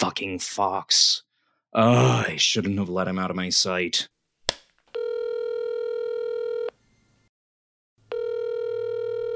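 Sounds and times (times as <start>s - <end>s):
speech: 0.0s - 4.1s
phone call ringing tones through the earpiece: 4.9s - 6.8s, 8.1s - 9.3s.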